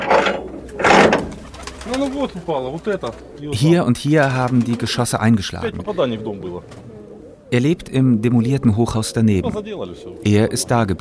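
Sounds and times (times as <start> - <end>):
broad rustling bursts: 0.0 - 3.4
pigeons cooing in a pigeon loft in a shell-damaged residential area: 0.0 - 10.9
speech: 1.9 - 6.8, 7.5 - 10.9.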